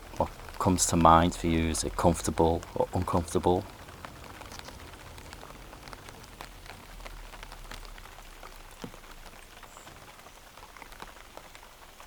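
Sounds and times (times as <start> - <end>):
rain pattering on leaves: 0.0 - 12.0
speech: 0.2 - 3.8.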